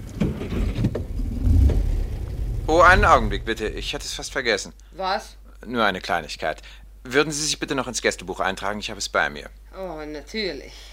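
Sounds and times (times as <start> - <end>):
car engine rumble setting off: 0.4 - 4.4
speech: 2.7 - 10.9.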